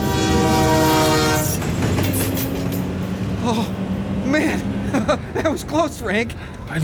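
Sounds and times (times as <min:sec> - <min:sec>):
train horn blaring: 0:00.0 - 0:02.7
train cars rolling along the tracks: 0:00.0 - 0:06.8
speech: 0:03.5 - 0:03.8, 0:05.1 - 0:06.8.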